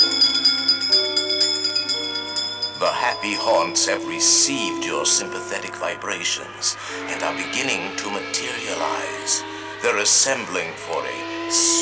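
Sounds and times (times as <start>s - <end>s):
bell ringing: 0.0s - 11.4s
speech: 3.2s - 11.7s.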